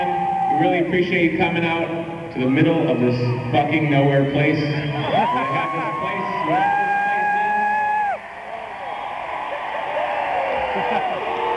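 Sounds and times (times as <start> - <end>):
large crowd booing: 0.0 - 0.9, 4.8 - 11.5
speech: 0.6 - 6.7.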